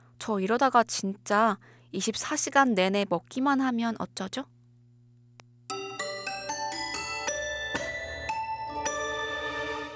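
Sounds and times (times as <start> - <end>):
speech: 0.2 - 4.6
bell chimes ringing a melody: 5.7 - 9.9.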